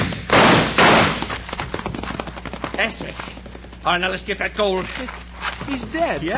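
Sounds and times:
gunshots in a radio western drama: 0:00.0 - 0:01.4
speech: 0:02.8 - 0:06.3.

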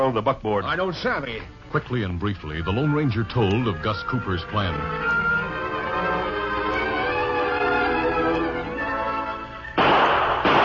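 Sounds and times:
speech: 0:00.0 - 0:05.4
sustained humming tones: 0:00.0 - 0:09.8
gunshots fired into the air: 0:09.8 - 0:10.6.

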